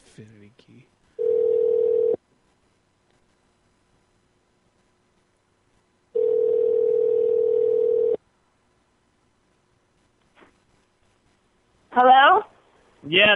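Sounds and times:
speech: 0.2s - 1.0s, 13.1s - 13.3s
telephone tones as a call is placed again: 1.2s - 2.2s, 6.2s - 8.2s.

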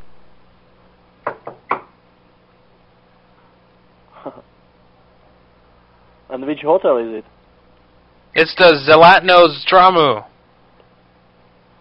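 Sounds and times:
quiet hum: 0.0s - 11.7s
knocking on a door: 1.2s - 1.9s
speech: 6.4s - 7.3s, 8.4s - 10.3s.

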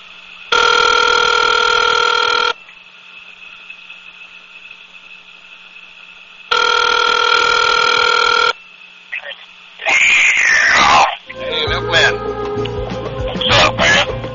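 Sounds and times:
line hum: 0.0s - 14.3s
phone ringing on speakerphone: 0.5s - 2.6s, 6.5s - 8.6s
crackly garbled noise of call connecting: 9.1s - 11.3s.

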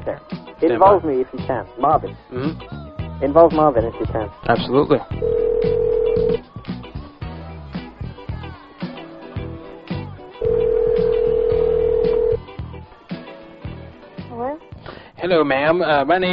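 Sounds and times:
speech: 0.0s - 6.5s, 15.3s - 16.3s
telephone dialing beeps: 5.2s - 6.4s, 10.4s - 12.4s
telephone ringing tone: 5.2s - 6.4s, 10.4s - 12.4s.

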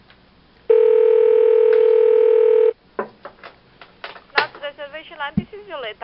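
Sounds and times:
steady telephone dial tone: 0.7s - 2.8s
speech: 5.3s - 6.0s.

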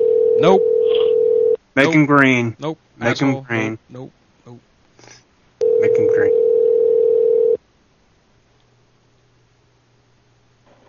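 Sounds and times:
telephone dial tone after hanging up: 0.0s - 1.6s, 5.6s - 7.6s
speech: 0.4s - 1.1s, 1.8s - 4.6s.

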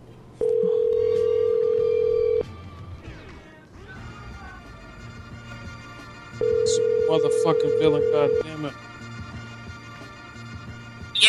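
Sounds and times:
loud steady electronic telephone tone: 0.4s - 2.4s, 6.4s - 8.4s
speech: 7.1s - 8.9s.

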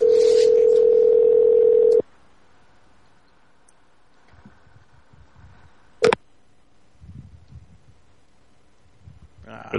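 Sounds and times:
telephone busy signal tone: 0.0s - 2.0s.

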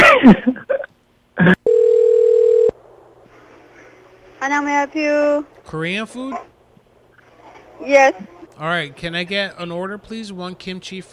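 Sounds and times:
speech: 0.2s - 0.8s, 1.4s - 1.6s, 4.5s - 6.5s, 7.8s - 11.1s
telephone dial tone while dialling a call: 1.7s - 2.7s.

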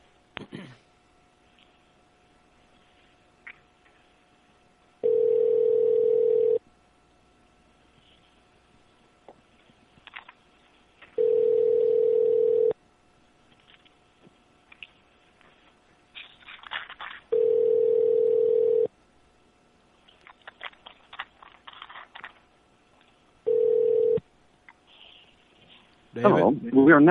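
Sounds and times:
telephone ringback tone: 5.0s - 6.6s, 11.2s - 12.8s, 17.3s - 18.9s, 23.5s - 24.2s
speech: 26.2s - 27.0s.

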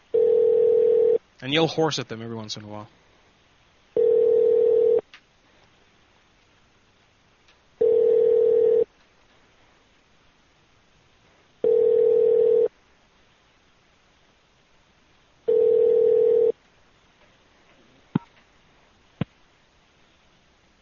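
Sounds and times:
outgoing telephone call ringing tone unanswered: 0.1s - 1.2s, 4.0s - 5.0s, 7.8s - 8.9s, 11.6s - 12.7s, 15.5s - 16.6s
speech: 1.4s - 3.0s.

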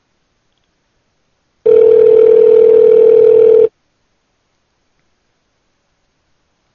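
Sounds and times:
buzzy phone ring tone through the earpiece while a call connects: 1.7s - 3.7s.

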